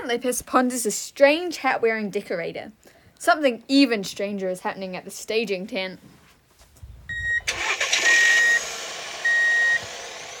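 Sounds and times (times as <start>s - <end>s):
speech: 0.1s - 6.2s
high electronic reversing beep: 7.1s - 10.3s
vehicle engine running while backing up: 7.1s - 10.3s.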